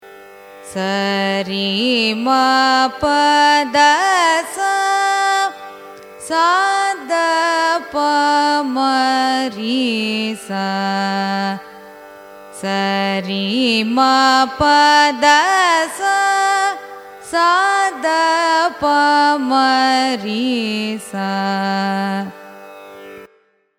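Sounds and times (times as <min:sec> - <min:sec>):
Carnatic music raga ascending and descending scale: 0:00.0 - 0:23.7.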